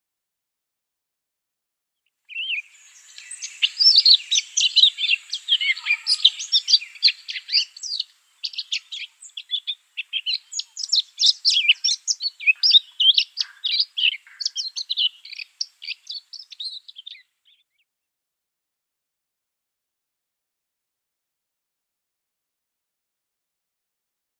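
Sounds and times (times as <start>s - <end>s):
blackcap subsong: 2.3s - 17.8s.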